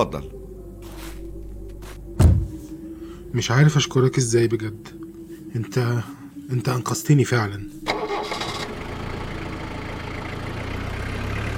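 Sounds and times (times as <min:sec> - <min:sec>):
speech: 0:00.0 - 0:00.4, 0:03.3 - 0:04.9, 0:05.5 - 0:08.4
car engine starting and pulling away: 0:07.8 - 0:11.5.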